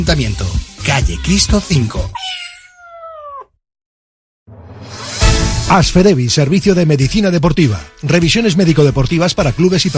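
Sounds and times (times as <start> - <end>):
speech: 0.0 - 2.1, 5.7 - 9.9
cat meowing: 2.1 - 3.6.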